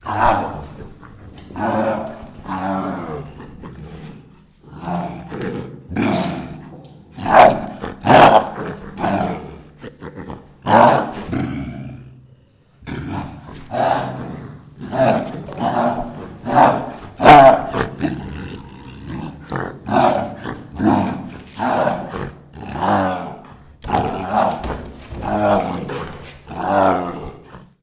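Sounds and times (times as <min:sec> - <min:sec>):
reactive tiger roaring aggressively: 0:00.0 - 0:27.8.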